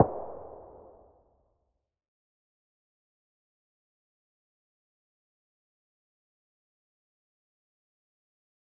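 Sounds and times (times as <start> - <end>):
single weapon sound: 0.0 - 0.8.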